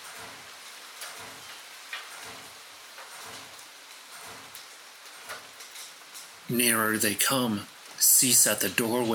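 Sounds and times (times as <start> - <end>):
steady rain running down a window pane: 0.0 - 9.1
speech: 6.5 - 9.1.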